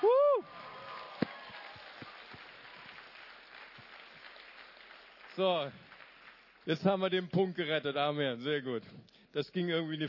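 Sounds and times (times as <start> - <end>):
loud cheering shout: 0.0 - 3.0
audience applauding for single mothers: 0.0 - 7.1
speech: 5.4 - 5.9, 6.6 - 10.0.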